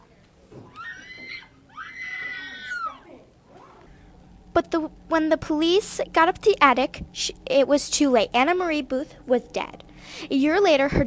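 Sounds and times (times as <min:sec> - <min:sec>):
woman screaming outside: 0:00.7 - 0:03.1
speech: 0:04.6 - 0:11.0.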